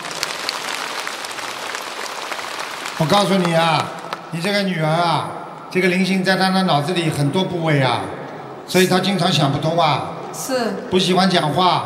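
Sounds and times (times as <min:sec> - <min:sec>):
audience applause: 0:00.0 - 0:04.6
speech: 0:03.0 - 0:11.8.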